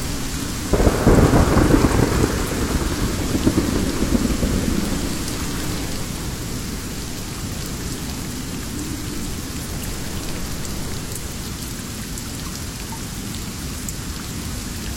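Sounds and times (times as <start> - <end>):
deep roll of thunder: 0.0 - 12.2
rain pattering in a jungle: 0.0 - 14.9
low rumble: 2.6 - 12.0.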